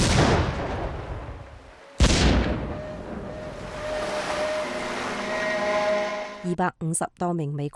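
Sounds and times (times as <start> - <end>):
loud warship explosion: 0.0 - 3.8
low steady mechanical drone: 1.3 - 6.6
speech: 6.5 - 7.7.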